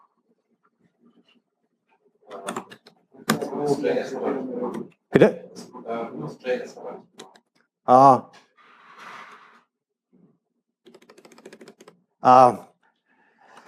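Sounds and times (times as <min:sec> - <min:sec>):
speech: 0:03.6 - 0:07.1, 0:07.9 - 0:08.4, 0:12.2 - 0:12.7
typing on a computer keyboard: 0:10.8 - 0:12.0.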